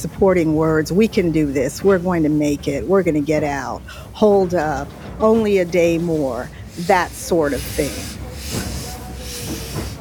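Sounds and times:
speech: 0:00.0 - 0:08.7
steam train hissing while pulling into a station: 0:03.8 - 0:09.9.

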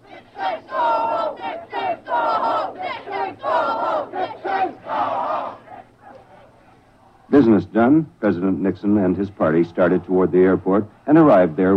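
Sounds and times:
large crowd of demonstrators shouting: 0:00.0 - 0:06.5, 0:09.4 - 0:11.7
speech: 0:07.3 - 0:11.7.

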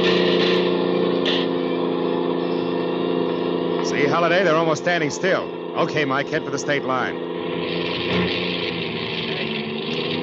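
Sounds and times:
car engine running: 0:00.0 - 0:10.2
speech: 0:04.2 - 0:08.6.

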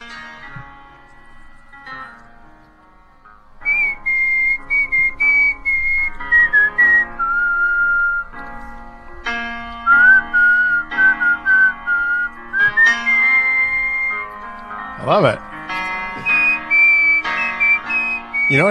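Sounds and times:
man whistling a melodic tune as a whistling competition entry: 0:03.6 - 0:08.8, 0:09.8 - 0:18.6.

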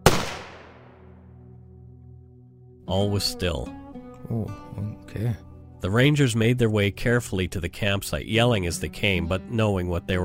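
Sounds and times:
muffled .22 rifle shot at a campsite: 0:00.0 - 0:01.1
speech: 0:02.9 - 0:10.2.

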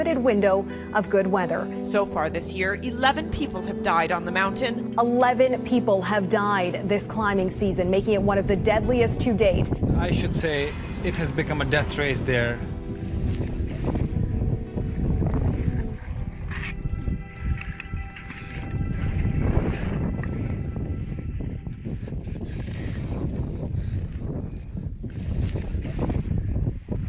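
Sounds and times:
speech: 0:00.0 - 0:12.7
wind roaring at the summit of Mount Everest: 0:06.3 - 0:27.0.

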